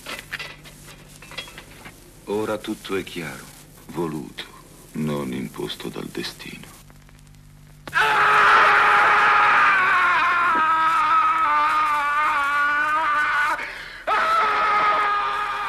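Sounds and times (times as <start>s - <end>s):
speech: 2.3s - 6.8s
man screaming in a film scene: 7.9s - 15.6s.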